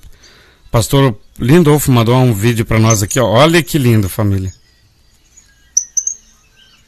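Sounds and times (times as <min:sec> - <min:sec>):
speech: 0:00.7 - 0:04.6
surucuá trogon calling: 0:02.0 - 0:06.8.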